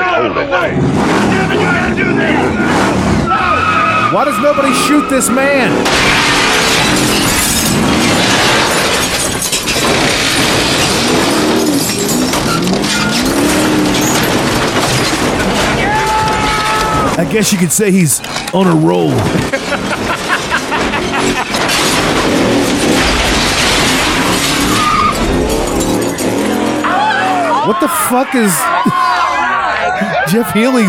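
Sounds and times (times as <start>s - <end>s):
car tire squeals: 0.1s - 17.2s, 20.6s - 30.8s
speech: 0.2s - 2.8s, 4.1s - 8.3s, 17.2s - 20.2s, 27.7s - 29.3s, 30.3s - 30.8s
car engine revving hard as it accelerates: 0.5s - 15.9s, 18.3s - 27.8s
debris crunching: 2.6s - 28.8s
glass shattering as a car smashes through: 4.2s - 17.1s, 19.2s - 27.4s
laughter: 16.8s - 21.8s, 27.0s - 30.8s.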